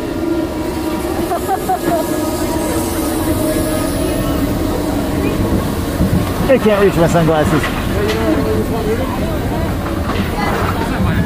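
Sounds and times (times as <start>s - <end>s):
roller coaster train rolling on its track with metallic clacks: 0.0s - 11.2s
laughter: 0.7s - 5.6s
speech: 1.5s - 2.4s, 6.5s - 9.5s.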